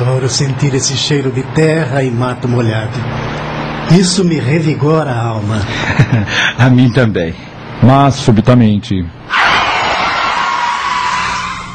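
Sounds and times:
speech: 0.2s - 9.4s
laughter: 5.6s - 6.4s
car braking hard with tires screeching: 9.3s - 11.7s.

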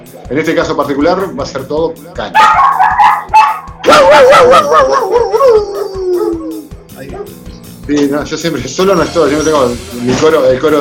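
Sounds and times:
speech: 0.1s - 2.9s, 3.8s - 5.8s, 7.0s - 10.8s
dog barking: 2.4s - 6.4s, 7.1s - 7.4s
dog yowling howl: 2.4s - 7.4s.

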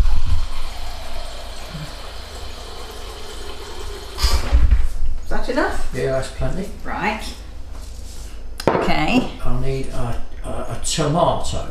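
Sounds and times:
filtered water running from a fridge dispenser: 0.0s - 4.5s
low mechanical hum of a fridge: 0.0s - 11.6s
speech: 5.6s - 7.4s, 9.0s - 11.6s.

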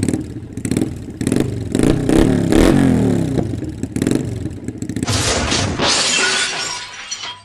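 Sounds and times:
motorcycle engine revving: 0.0s - 5.2s
crash: 5.0s - 7.4s
debris clattering: 5.0s - 7.4s
glass shattering: 5.0s - 7.4s.

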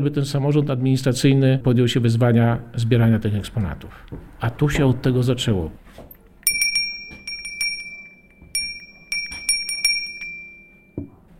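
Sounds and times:
speech: 0.0s - 6.1s
small bell ringing: 6.4s - 11.2s.

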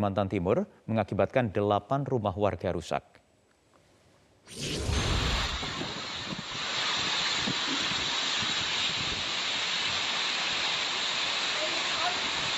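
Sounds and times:
speech: 0.0s - 3.2s, 4.5s - 5.0s
strong whirlwind gusts buffeting the microphone: 5.4s - 10.0s
heavy rain on a residential area in Talisayan Berau East Kalimantan Indonesia: 6.7s - 12.5s.

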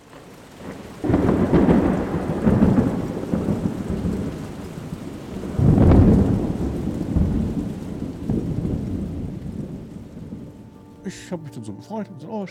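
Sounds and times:
steady rain hissing: 0.0s - 12.4s
deep rolling rumbles of thunder: 0.6s - 10.7s
speech: 11.2s - 12.4s.

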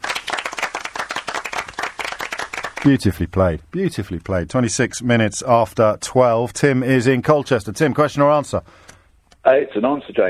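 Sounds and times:
small group clapping: 0.0s - 3.0s
speech: 2.8s - 8.9s, 9.5s - 10.2s.

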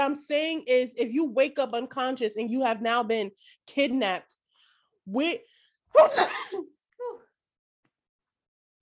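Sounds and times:
speech: 0.0s - 4.4s, 5.1s - 7.2s
sneeze: 6.0s - 6.6s.

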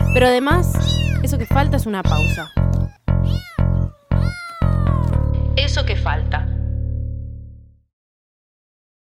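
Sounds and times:
several cats meowing: 0.0s - 5.3s
speech: 0.2s - 2.6s, 5.6s - 6.6s.

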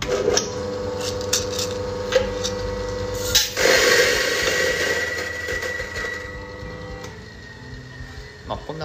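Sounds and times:
EK43 coffee grinder grinding coffee beans: 0.0s - 7.0s.

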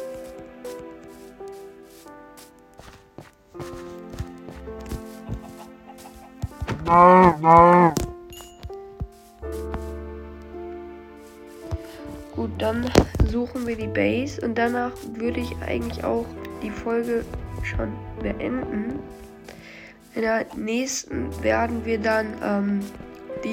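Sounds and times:
soft clicking footsteps: 0.0s - 23.5s
video game music: 0.0s - 23.5s
video game cow mooing: 6.8s - 8.0s
speech: 6.9s - 8.0s, 12.6s - 19.2s, 20.2s - 23.5s.

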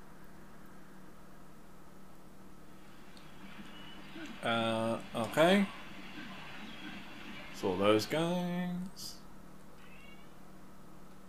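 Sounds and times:
steady low hum: 0.0s - 11.2s
speech: 4.4s - 5.8s, 7.6s - 9.2s
cat meowing: 9.8s - 10.4s.

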